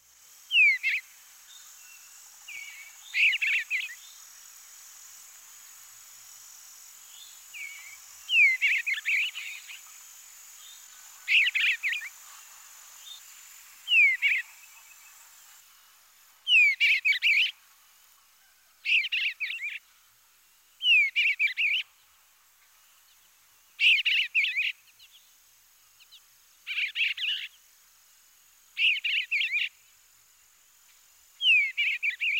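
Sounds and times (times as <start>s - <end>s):
eastern bluebird singing its full song: 0.5s - 4.3s, 7.0s - 9.9s, 10.6s - 12.2s, 12.9s - 15.4s, 16.4s - 17.6s, 18.8s - 19.8s, 20.8s - 22.0s, 23.8s - 25.2s, 26.0s - 27.6s, 28.8s - 29.8s, 31.4s - 32.3s.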